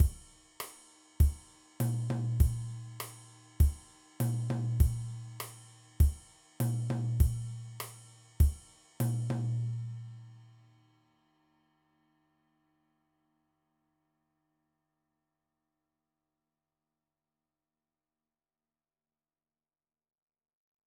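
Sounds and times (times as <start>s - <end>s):
mambo drum beat: 0.0s - 0.4s, 1.2s - 9.9s.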